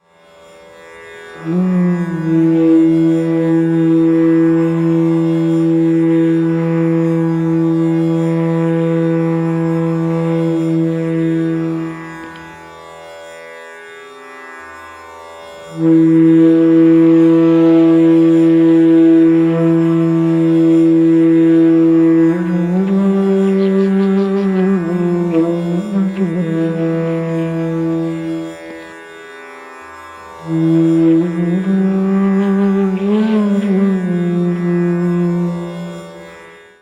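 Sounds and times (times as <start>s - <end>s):
flute playing: 1.5s - 12.1s, 15.7s - 28.6s, 30.4s - 35.7s.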